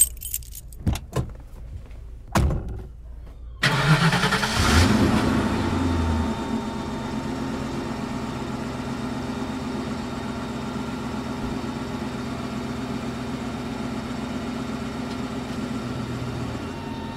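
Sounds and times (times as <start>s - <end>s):
keys jangling: 0.0s - 0.8s
car engine turning over and starting: 0.0s - 10.6s
car engine idling: 0.0s - 16.9s.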